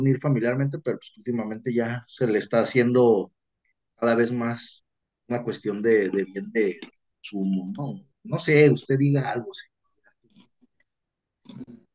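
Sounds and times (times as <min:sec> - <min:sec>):
speech: 0:00.0 - 0:03.4, 0:04.0 - 0:09.7, 0:11.5 - 0:11.8
wet chewing and gulping: 0:10.1 - 0:11.9.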